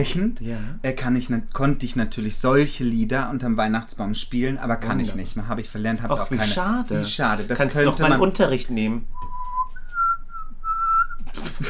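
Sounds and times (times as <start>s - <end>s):
speech: 0.0s - 9.1s, 11.4s - 11.6s
person whistling: 9.1s - 11.4s
laughter: 11.3s - 11.6s.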